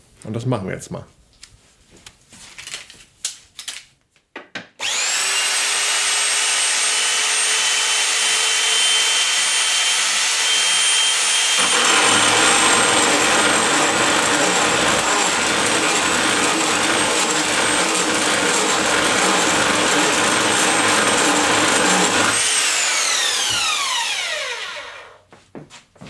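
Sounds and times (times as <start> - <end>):
speech: 0.2 - 1.2
power saw cutting clamped metal pipe to length for a clothes rack: 4.8 - 25.2.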